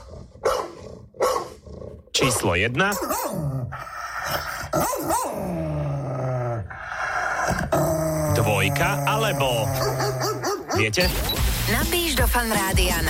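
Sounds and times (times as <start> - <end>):
dog growling with low rumbling growls: 0.0 - 10.9
dog barking loud and deep: 0.4 - 1.6, 2.9 - 3.4, 4.8 - 5.4, 9.8 - 10.9
speech: 2.2 - 6.8, 7.5 - 13.0.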